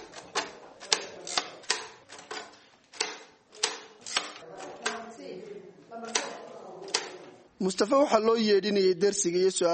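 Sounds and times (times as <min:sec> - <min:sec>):
braille typewriter punching dots into paper: 0:00.0 - 0:05.0
speech: 0:07.6 - 0:09.7.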